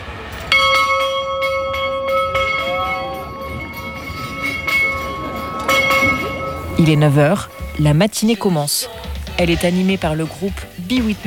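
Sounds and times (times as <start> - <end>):
large bell ringing: 0.2 - 9.0
speech: 6.8 - 11.2.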